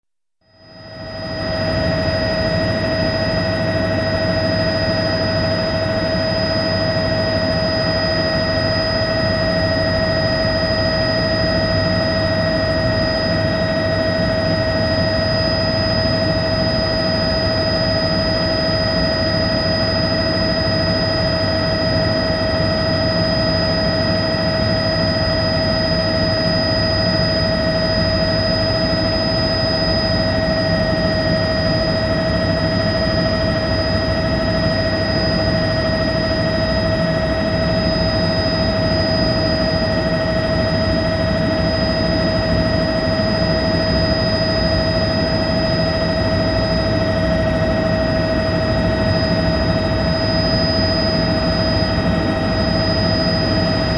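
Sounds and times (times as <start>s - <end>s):
helicopter in flight heard from inside: 0.4s - 53.9s.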